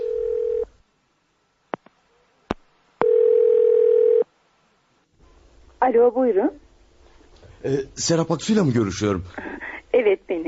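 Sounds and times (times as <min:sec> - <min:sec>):
buzzing telephone ringback tone: 0:00.0 - 0:00.7, 0:03.0 - 0:04.2
speech: 0:05.9 - 0:06.6, 0:07.6 - 0:10.3.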